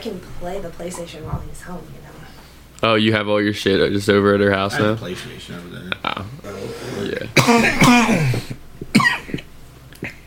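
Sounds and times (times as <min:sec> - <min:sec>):
speech: 0:00.0 - 0:09.1
harsh raspy cough: 0:06.9 - 0:10.2.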